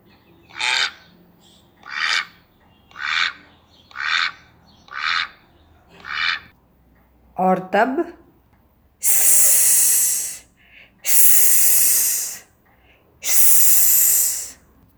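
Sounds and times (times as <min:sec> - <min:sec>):
ducks quacking and chattering to each other: 0:01.8 - 0:05.4, 0:06.0 - 0:06.5
speech: 0:07.4 - 0:08.2.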